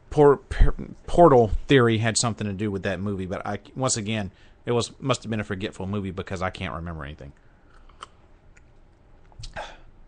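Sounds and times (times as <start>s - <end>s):
speech: 0.2s - 7.5s
small mouth clicks: 7.4s - 9.8s.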